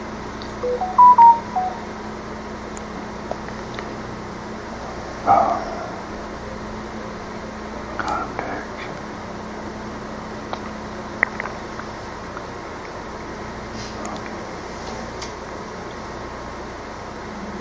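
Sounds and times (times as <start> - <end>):
steady low hum: 0.0 - 17.6
telephone keypad dialing tones on an Android phone: 0.6 - 1.8.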